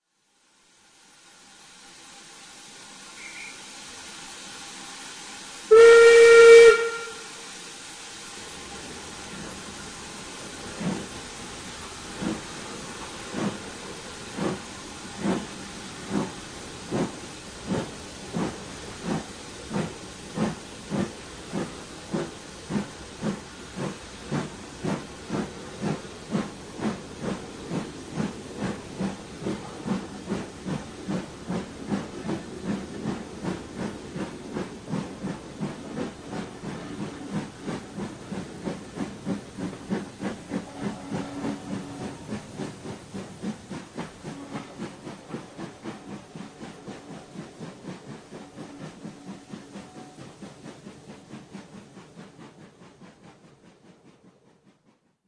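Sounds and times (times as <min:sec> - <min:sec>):
train departing: 0:00.6 - 0:55.2
guard whistle: 0:03.2 - 0:03.6.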